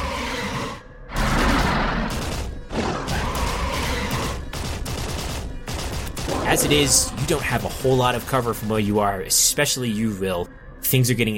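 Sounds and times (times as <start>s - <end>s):
gunfire sound effect with bullets flying: 1.1s - 7.8s
speech: 6.5s - 11.3s.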